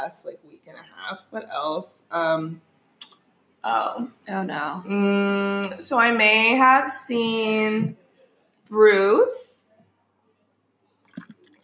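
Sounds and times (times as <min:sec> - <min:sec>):
speech: 0:00.1 - 0:02.7, 0:03.6 - 0:08.0, 0:08.7 - 0:09.6
faint fizzy trickle of champagne: 0:11.0 - 0:11.6
champagne pouring into a glass: 0:11.1 - 0:11.6.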